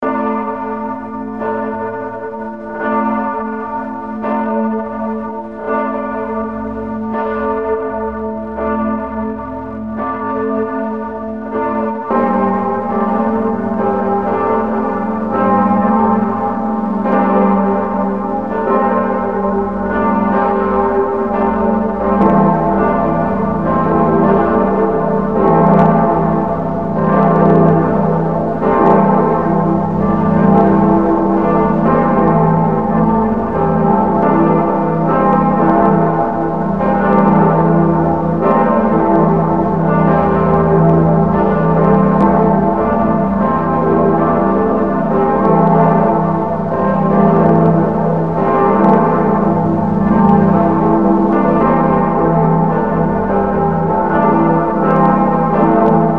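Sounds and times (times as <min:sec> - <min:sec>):
bells of the former Berlin bell tower ringing in E G A: 0:00.0 - 0:56.1.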